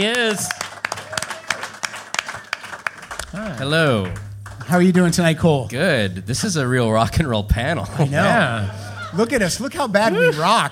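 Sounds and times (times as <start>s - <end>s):
speech: 0.0s - 0.6s, 3.3s - 10.7s
sharp hand claps: 0.0s - 4.8s
audience applauding: 0.0s - 4.9s
laughter: 7.8s - 10.7s.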